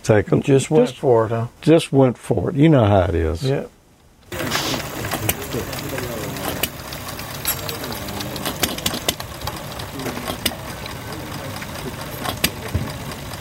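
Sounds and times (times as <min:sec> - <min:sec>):
speech: 0:00.0 - 0:03.8, 0:05.5 - 0:05.9
small old engine running on a table: 0:04.3 - 0:13.3.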